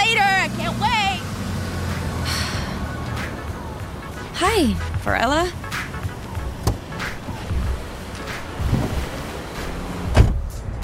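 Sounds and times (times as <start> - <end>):
car driving off leaving Malibu: 0.0 - 10.8
speech: 4.6 - 5.6
sharp clunks: 6.6 - 7.2, 10.1 - 10.5.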